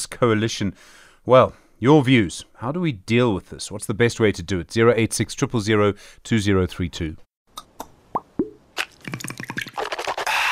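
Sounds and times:
speech: 0.0 - 7.3
Listerine mouthwash being poured: 8.8 - 10.5.

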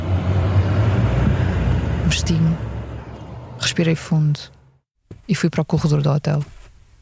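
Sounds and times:
car engine rumbling as the car accelerates across a street: 0.0 - 4.8
speech: 2.1 - 2.7, 3.6 - 4.6, 5.2 - 6.9.

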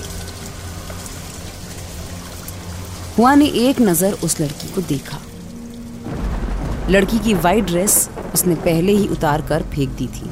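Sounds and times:
heavy rain pouring: 0.0 - 10.2
speech: 3.2 - 5.3, 6.9 - 10.2.

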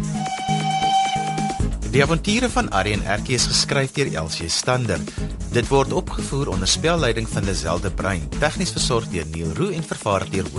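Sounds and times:
steam train whistle: 0.2 - 1.7
speech: 1.9 - 10.5.

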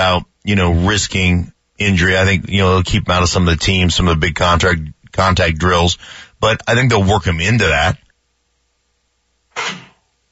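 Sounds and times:
speech: 0.0 - 8.0, 9.6 - 9.8
sneeze: 9.5 - 10.0.

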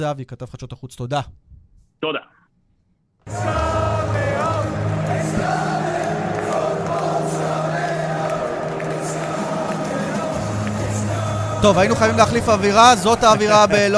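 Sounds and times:
speech: 0.0 - 2.4, 3.3 - 3.6, 11.6 - 13.9
laughter: 3.3 - 12.7
large crowd of football fans chanting and cheering outdoors: 3.3 - 13.9.

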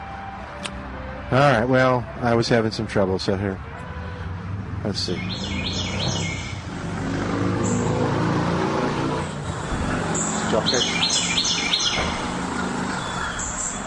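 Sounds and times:
steady low rumble of traffic or engine noise: 0.0 - 13.8
vehicle passing: 0.0 - 13.8
speech: 1.3 - 3.8, 4.8 - 6.4, 10.6 - 11.2
wren singing in rapid high trilling bursts: 5.0 - 6.7, 10.1 - 13.8.

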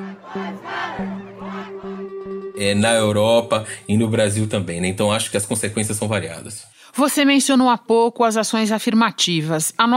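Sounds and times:
large protest crowd chanting a slogan in unison: 0.0 - 2.4
speech: 0.4 - 1.9, 2.6 - 9.9.

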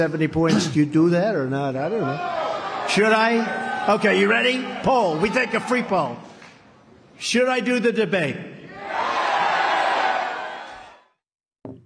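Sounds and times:
speech: 0.0 - 6.3, 7.2 - 8.5
rally crowd shouting yes: 2.0 - 5.9, 8.7 - 11.1.

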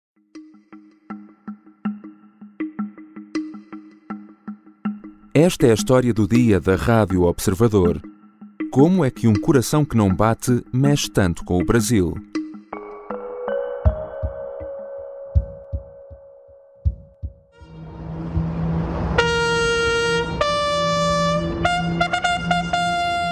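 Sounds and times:
speech: 5.4 - 8.1, 8.7 - 12.3
military band heavy drum beats: 13.8 - 14.7, 15.4 - 17.5
military band loud sustained brass chords: 17.5 - 23.3.

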